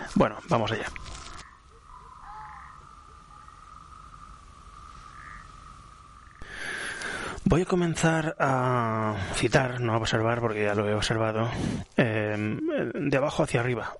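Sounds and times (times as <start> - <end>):
speech: 0.1 - 1.2, 7.5 - 13.9
dense chorus of frogs croaking at night: 0.3 - 7.4.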